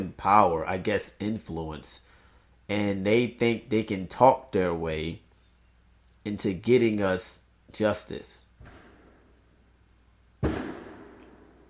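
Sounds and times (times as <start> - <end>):
speech: 0.0 - 5.2, 6.2 - 8.4
firework bang outside: 8.6 - 9.3, 10.4 - 11.6.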